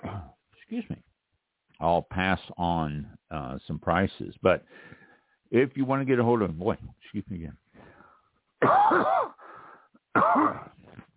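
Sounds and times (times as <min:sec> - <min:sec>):
person coughing from lisinopril medication: 0:00.0 - 0:00.4, 0:08.6 - 0:09.4, 0:10.1 - 0:11.1
speech: 0:00.7 - 0:01.1, 0:01.8 - 0:07.6, 0:08.6 - 0:09.3.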